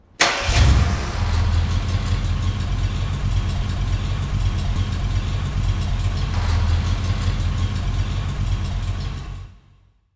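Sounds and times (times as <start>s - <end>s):
car starting: 0.2s - 9.7s.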